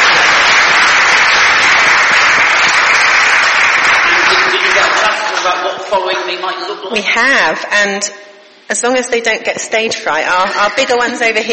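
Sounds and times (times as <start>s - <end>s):
crowd applauding: 0.0s - 6.0s
speech: 5.9s - 11.5s.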